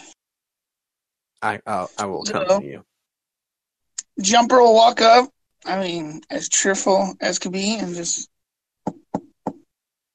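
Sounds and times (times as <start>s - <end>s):
speech: 1.4s - 2.9s, 4.2s - 9.0s
firm knocks on a wooden door: 8.9s - 9.6s.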